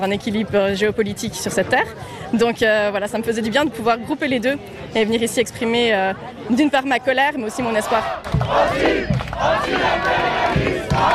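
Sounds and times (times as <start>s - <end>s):
speech: 0.0s - 11.1s
dense crowd of protesters shouting and yelling: 7.2s - 11.1s.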